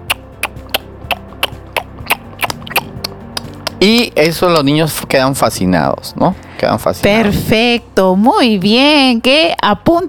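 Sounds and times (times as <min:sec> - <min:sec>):
tongue clicks imitating a slow horse's hooves: 0:00.0 - 0:04.1
speech: 0:03.8 - 0:10.0.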